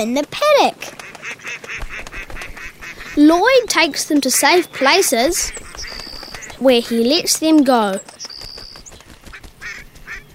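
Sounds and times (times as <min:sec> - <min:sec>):
speech: 0:00.0 - 0:01.8, 0:03.2 - 0:05.6, 0:06.6 - 0:08.1
young ducks quacking: 0:00.8 - 0:08.0, 0:09.2 - 0:10.3.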